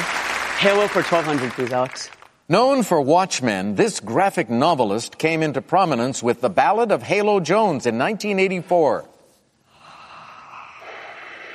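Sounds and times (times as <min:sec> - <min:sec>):
speech: 0:00.6 - 0:09.1
heavy noisy rasping breathing: 0:09.6 - 0:11.5.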